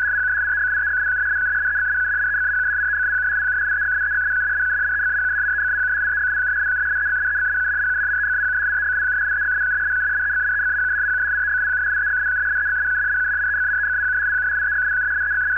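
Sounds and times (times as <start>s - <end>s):
108.86 baud FSK data signal in idle condition: 0.0s - 15.5s.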